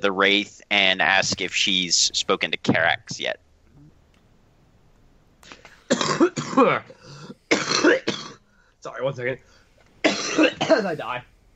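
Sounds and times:
speech: 0.0 - 3.4, 5.5 - 8.2, 8.8 - 9.5, 10.3 - 11.3
harsh raspy coughing fit: 5.9 - 8.4, 10.0 - 11.0.

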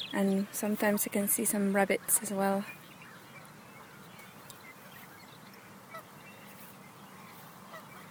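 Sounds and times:
flock of geese honking at a small man-made lake: 0.0 - 8.0
steady outdoor ambience by a lake surrounded by fields: 0.0 - 8.0
speech: 0.1 - 2.8.

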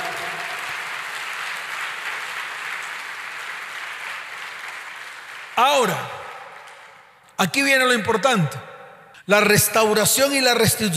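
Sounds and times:
large crowd applauding: 0.0 - 7.2
speech: 5.6 - 6.2, 7.4 - 8.7, 9.3 - 10.9.

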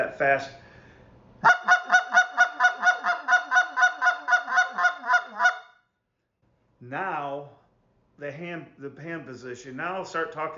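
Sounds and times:
speech: 0.0 - 0.6, 6.9 - 7.6, 8.2 - 10.5
fast clucks blown on a goose call: 1.4 - 5.7.

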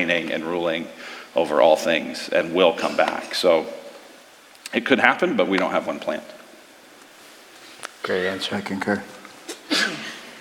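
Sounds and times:
speech: 0.0 - 3.8, 4.7 - 6.4, 8.0 - 9.9
person sneezing: 9.5 - 10.3.

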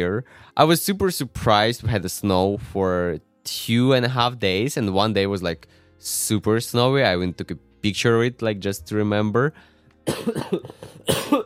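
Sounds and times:
speech: 0.0 - 11.4
person coughing in harsh hacking fits: 10.0 - 11.4.

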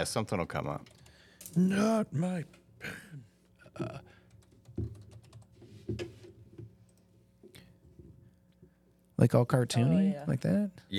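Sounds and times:
speech: 0.0 - 4.1, 9.2 - 10.9
typing on a computer keyboard: 0.8 - 1.2, 4.2 - 5.6.

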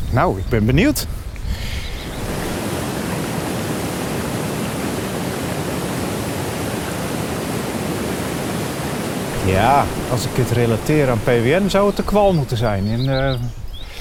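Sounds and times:
speech: 0.1 - 1.2, 9.5 - 13.6
water gushing from an outlet pipe into a basin in an infiltration area: 2.2 - 12.7.

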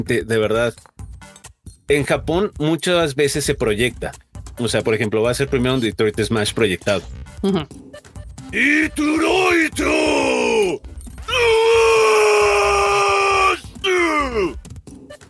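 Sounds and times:
speech: 0.0 - 0.9, 1.9 - 10.0
man shouting a loud drawn-out battle cry: 8.6 - 14.6.

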